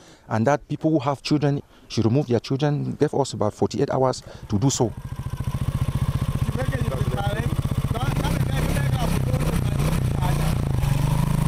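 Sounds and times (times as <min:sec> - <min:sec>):
speech: 0:00.3 - 0:05.5, 0:07.2 - 0:08.0
motorcycle engine: 0:04.2 - 0:11.4.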